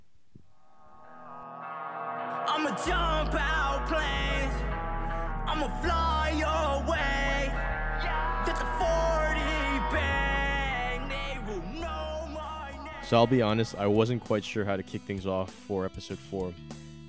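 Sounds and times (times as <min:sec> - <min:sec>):
person singing with harmonies: 0:01.5 - 0:16.2
speech: 0:02.7 - 0:04.7, 0:05.5 - 0:10.3, 0:13.1 - 0:16.9
deep pulsing bass line: 0:02.9 - 0:14.4.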